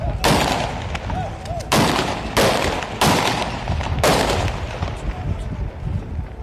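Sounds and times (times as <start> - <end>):
low murmur of noise: 0.0 - 6.4
gunshots: 0.1 - 5.2.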